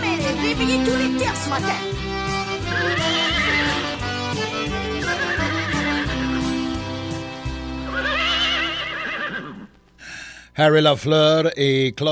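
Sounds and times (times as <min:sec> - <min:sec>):
steady rhythmic instrumental music: 0:00.0 - 0:07.9
speech: 0:00.5 - 0:02.0, 0:10.6 - 0:12.1
two mares whinnying: 0:02.6 - 0:03.8, 0:05.0 - 0:06.5, 0:07.8 - 0:09.8.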